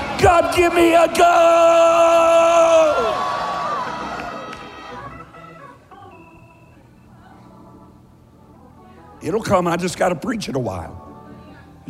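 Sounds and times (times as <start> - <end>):
large group of people screaming loudly: 0.0 - 5.4
speech: 0.2 - 2.8, 9.2 - 11.0.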